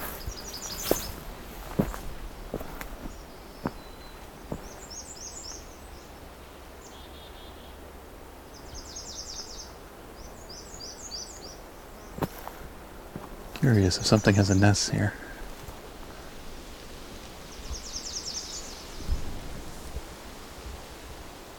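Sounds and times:
footsteps crunching: 0:00.0 - 0:05.0, 0:12.2 - 0:14.6, 0:15.3 - 0:16.2
American redstarts calling in short high thin chirping phrases: 0:00.0 - 0:19.2
soft outdoor hiss: 0:00.0 - 0:21.5
speech: 0:13.6 - 0:15.2.

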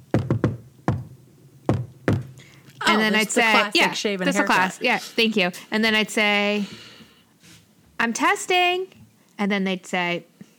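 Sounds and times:
patterned knocking on a door: 0:00.1 - 0:02.4
speech: 0:02.9 - 0:06.9, 0:08.0 - 0:10.3.

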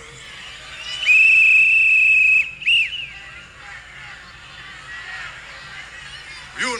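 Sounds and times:
shrill coach's whistle blasts: 0:00.8 - 0:03.2.

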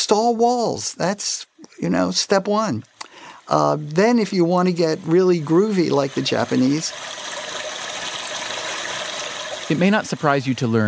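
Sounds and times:
speech: 0:00.1 - 0:02.9, 0:03.5 - 0:07.3, 0:09.7 - 0:10.8
electronic device in a restroom imitating a flushing toilet: 0:03.5 - 0:10.8.

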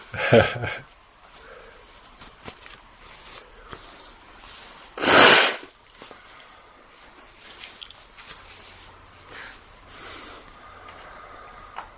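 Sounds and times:
quiet shuffling: 0:00.9 - 0:05.0, 0:05.8 - 0:11.1
nose blowing: 0:05.0 - 0:05.7.

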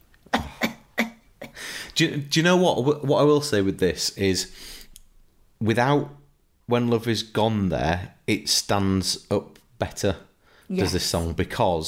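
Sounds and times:
film character coughing harshly: 0:00.3 - 0:01.7
speech: 0:02.0 - 0:04.8, 0:05.6 - 0:11.8.

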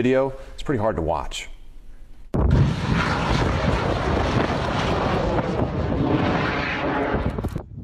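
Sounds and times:
speech: 0:00.0 - 0:01.5
bursts of noise: 0:02.4 - 0:07.6
home-built rocket roaring on takeoff in the desert: 0:02.4 - 0:07.7.

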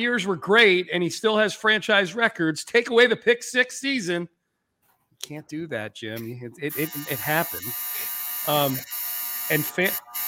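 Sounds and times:
speech: 0:00.0 - 0:04.4, 0:05.2 - 0:10.2
clothes dryer buzzer: 0:06.7 - 0:10.2.

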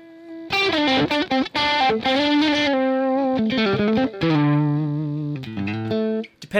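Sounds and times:
distorted electric lead guitar playing melodic phrase: 0:00.0 - 0:06.4.

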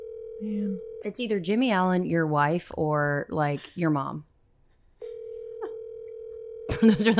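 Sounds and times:
phone line tone as a call rings out: 0:00.0 - 0:01.0, 0:05.0 - 0:06.8
speech: 0:00.4 - 0:04.3, 0:06.8 - 0:07.1.

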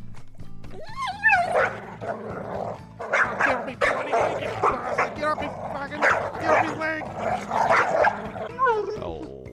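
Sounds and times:
dog barking and yipping excitedly: 0:00.9 - 0:08.9.

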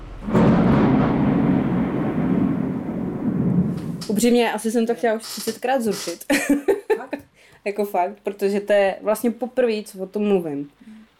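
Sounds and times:
rolling thunder of a fierce thunderstorm over a high-rise housing estate: 0:00.0 - 0:04.8
speech: 0:04.1 - 0:10.9
laughter: 0:06.3 - 0:07.2.

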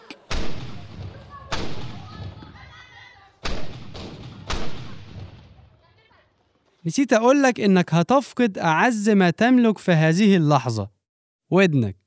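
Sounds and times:
firecracker on a rope slammed against a wall at iftar: 0:00.2 - 0:05.9
speech: 0:06.8 - 0:12.0.

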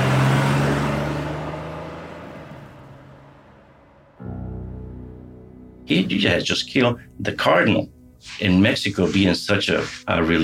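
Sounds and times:
car engine roaring as car speeds off from an airport: 0:00.0 - 0:04.2
speech: 0:05.9 - 0:10.4.

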